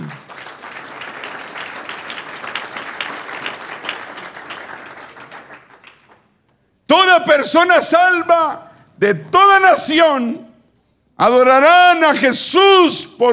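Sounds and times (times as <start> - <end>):
audience applauding: 0.0 - 6.4
speech: 7.2 - 10.4, 11.2 - 13.3.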